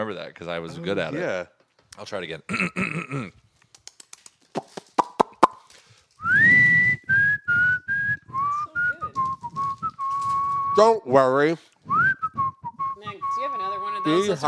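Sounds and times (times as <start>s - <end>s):
speech: 0.0s - 3.4s, 4.5s - 4.9s, 10.8s - 11.7s, 14.0s - 14.4s
sharp clicks and taps: 3.6s - 5.6s
person whistling a bouncy tune: 6.2s - 10.9s, 11.8s - 14.4s.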